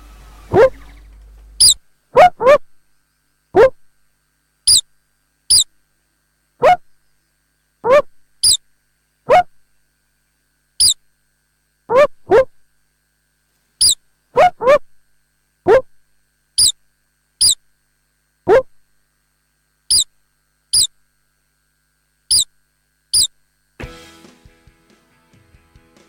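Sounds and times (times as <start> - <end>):
star-nosed mole squeaking: 0.5 - 2.7, 3.6 - 3.8, 4.7 - 4.9, 5.5 - 5.7, 6.6 - 6.9, 7.8 - 8.6, 9.3 - 9.6, 10.8 - 11.0, 11.9 - 12.6, 13.8 - 14.9, 15.7 - 15.9, 16.6 - 16.8, 17.4 - 17.7, 18.5 - 18.7, 19.9 - 20.1, 20.7 - 21.0, 22.3 - 23.4.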